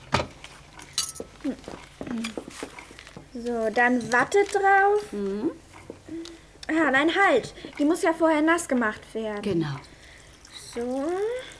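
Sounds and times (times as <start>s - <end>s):
small plate clinking taken out of a kitchen cupboard: 0.8s - 2.6s
speech: 1.4s - 9.9s, 10.8s - 11.5s.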